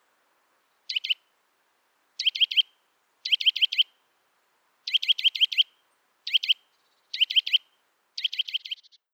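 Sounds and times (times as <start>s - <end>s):
Eurasian nuthatch Sitta europaea giving piping calls: 0.9s - 1.3s, 2.2s - 4.0s, 4.9s - 9.1s.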